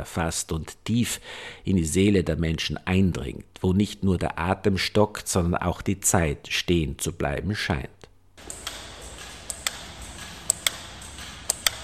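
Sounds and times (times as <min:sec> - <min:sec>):
speech: 0:00.0 - 0:08.6
faint room hiss: 0:00.0 - 0:11.8
several wall clocks ticking: 0:08.4 - 0:11.8.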